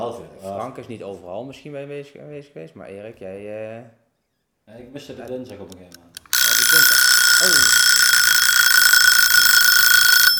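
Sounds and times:
speech: 0.1 - 4.0, 4.7 - 6.2, 7.4 - 7.7
alarm clock ringing: 6.2 - 10.3.

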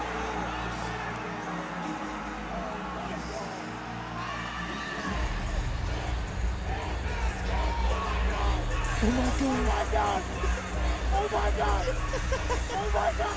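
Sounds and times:
huge stadium concert crowd cheering and yelling: 0.0 - 13.3
laughter: 6.7 - 13.3
speech: 9.0 - 10.6, 11.2 - 13.3.

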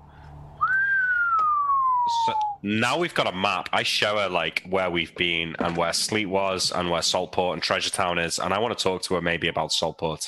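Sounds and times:
long clear whistle sliding downward in pitch: 0.5 - 2.7
speech: 2.3 - 10.2.

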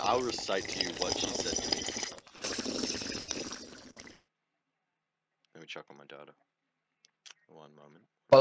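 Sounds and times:
speech: 0.0 - 1.7, 5.8 - 6.5, 7.5 - 8.3
water bubbling in a bong while smoking: 0.0 - 4.2.

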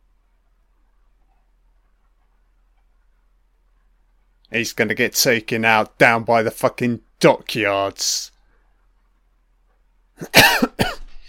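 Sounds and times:
speech: 4.5 - 8.3, 10.2 - 10.7
throat-clearing cough: 10.2 - 11.2.

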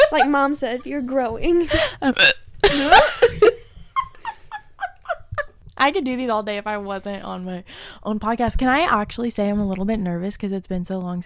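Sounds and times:
speech: 0.1 - 3.5, 5.8 - 11.2
person hiccuping: 2.0 - 3.3.

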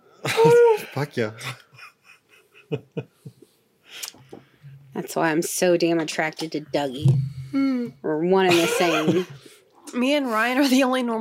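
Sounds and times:
speech: 0.4 - 1.6, 2.7 - 3.4, 5.0 - 11.2
person yawning: 7.5 - 7.9.

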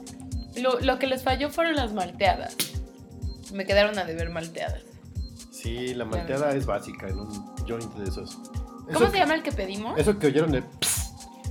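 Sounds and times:
speech: 0.1 - 2.8, 3.5 - 4.9, 5.6 - 11.0
beer bottle opening with hiss of escaping gas and fizzing: 10.8 - 11.3.

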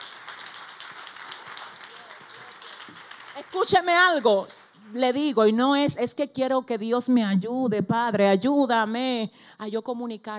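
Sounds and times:
audience applauding: 0.0 - 4.8
speech: 2.9 - 10.3.

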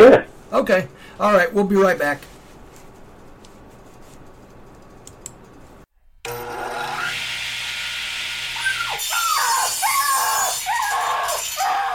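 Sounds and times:
speech: 0.0 - 2.3
saw grinding: 6.3 - 11.9
dog yelping: 8.6 - 11.9.

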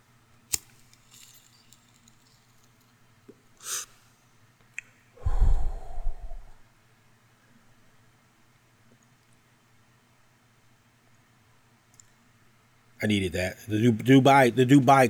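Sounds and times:
lighter-like click: 0.5 - 2.0
sharp inhale while taking a hit of marijuana: 3.6 - 4.0, 5.2 - 6.6
long heavy breathy exhale: 5.2 - 6.6
speech: 13.0 - 15.0.

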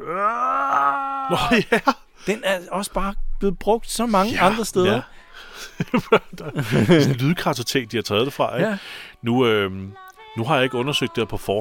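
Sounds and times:
man's drawn-out groan from a video game sound effect: 0.0 - 2.0, 4.2 - 5.0
laughter: 1.3 - 2.0, 4.2 - 7.4
speech: 1.3 - 11.5.

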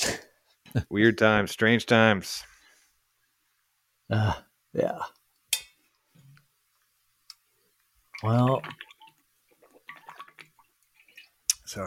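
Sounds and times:
speech: 0.7 - 2.5, 4.1 - 5.2, 8.2 - 8.8
person gulping a big mouthful of water: 8.1 - 11.6.

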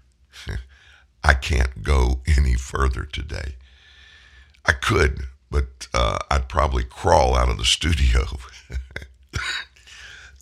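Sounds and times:
speech: 1.3 - 3.6, 4.7 - 9.6
cough from a tickle in the throat: 8.6 - 10.2.

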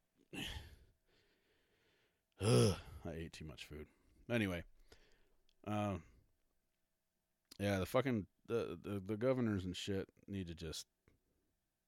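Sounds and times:
heavy breathy exhale and intake of breath: 0.3 - 3.0
speech: 2.4 - 4.7, 5.6 - 6.1, 7.6 - 10.9.

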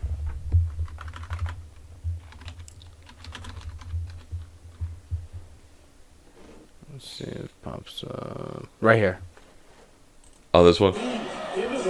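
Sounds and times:
low steady hum: 0.0 - 10.8
typing on a computer keyboard: 0.8 - 1.6, 2.2 - 4.8
speech: 7.0 - 9.3, 10.6 - 11.8
laughter: 10.9 - 11.8.

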